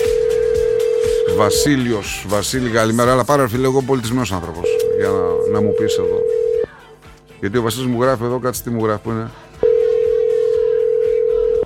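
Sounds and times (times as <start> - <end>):
steady single-pitch telephone tone on a phone line: 0.0 - 1.9, 4.7 - 6.7, 9.6 - 11.6
speech: 1.4 - 6.4, 7.4 - 9.5.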